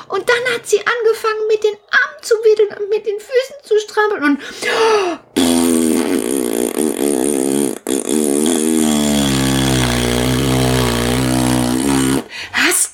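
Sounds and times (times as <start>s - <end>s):
speech: 0.4s - 5.2s
long loud buzzing rocket-like fart sound effect: 5.4s - 12.3s.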